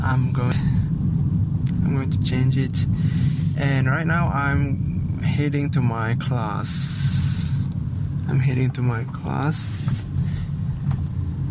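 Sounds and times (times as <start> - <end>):
car engine rumble inside a moving car: 0.0 - 11.4
speech: 0.1 - 0.9, 1.9 - 7.3, 8.3 - 10.1
road hiss: 2.1 - 5.4, 6.5 - 11.4.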